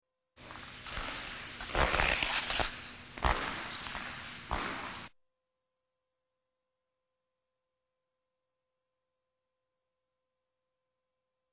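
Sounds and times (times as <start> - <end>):
ice skates gliding past: 0.4 - 5.1.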